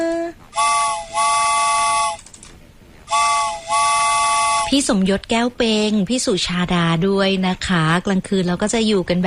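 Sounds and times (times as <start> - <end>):
train whistle with bright chord-like tone: 0.5 - 2.2, 3.1 - 4.8
speech: 4.7 - 9.2.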